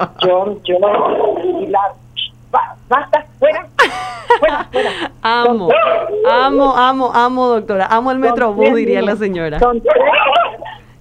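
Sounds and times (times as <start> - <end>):
speech: 0.0 - 10.4
laughter: 3.8 - 5.2
miniature schnauzers yipping and barking: 5.7 - 6.5, 9.9 - 10.9.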